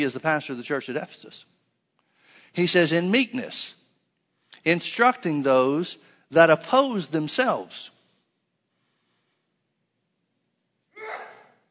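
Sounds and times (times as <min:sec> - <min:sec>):
speech: 0:00.0 - 0:01.6, 0:02.5 - 0:03.8, 0:04.6 - 0:07.9
person sneezing: 0:11.0 - 0:11.6.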